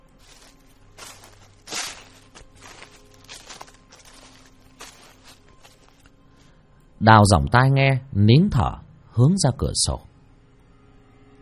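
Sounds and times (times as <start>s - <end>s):
footsteps crunching on dry leaves: 0.0s - 6.5s
speech: 7.0s - 10.1s.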